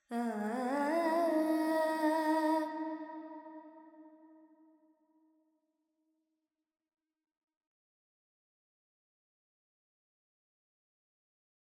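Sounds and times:
Carnatic female vocal alap in Phrygian mode with reverb: 0.1s - 2.9s.

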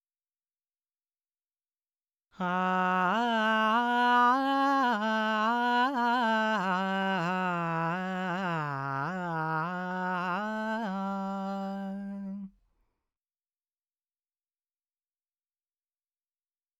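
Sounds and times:
dry male vocals in G: 2.4s - 12.5s.

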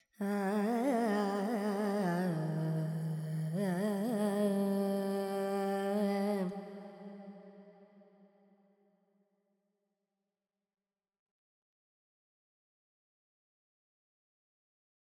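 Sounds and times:
Carnatic female vocal alap in F Lydian: 0.2s - 7.2s.

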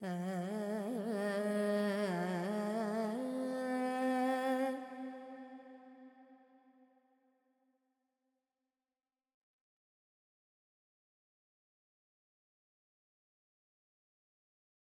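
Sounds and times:
female Carnatic vocal alap in raga Purvi Kalyani: 0.0s - 5.4s.

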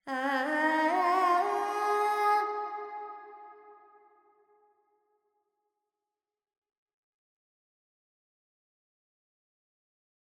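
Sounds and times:
Carnatic female vocal alaps in pentatonic G: 0.0s - 2.9s.

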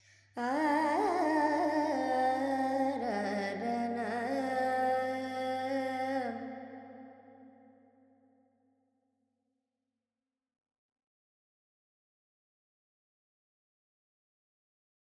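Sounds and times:
Carnatic female vocal alap in Lydian with reverb: 0.0s - 6.7s.

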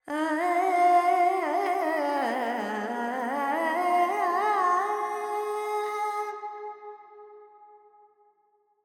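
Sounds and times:
Carnatic female vocals singing alaps with reverb: 0.0s - 6.3s.

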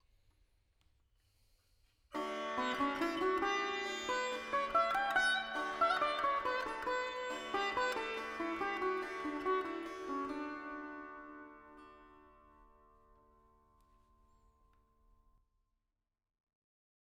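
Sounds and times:
veena in D with reverb: 2.2s - 14.5s.

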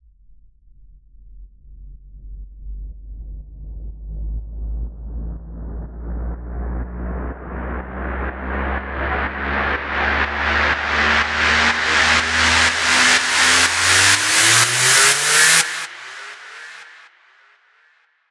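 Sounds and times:
rising uplifter sound effect: 5.6s - 16.8s.

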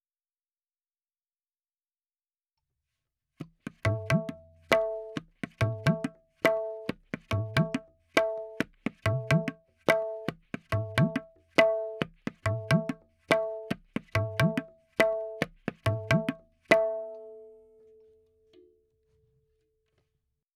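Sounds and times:
tabla playing: 3.5s - 17.6s.

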